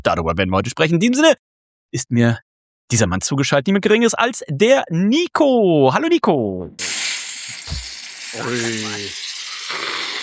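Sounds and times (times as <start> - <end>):
speech: 0.0 - 7.1, 8.4 - 9.9
non-alcoholic beer fizzing over from a shaken bottle: 6.8 - 10.2.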